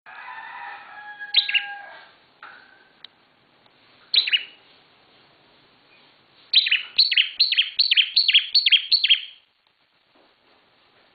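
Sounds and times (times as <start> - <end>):
bar-winged prinia giving sharp descending chirps: 6.6 - 9.4.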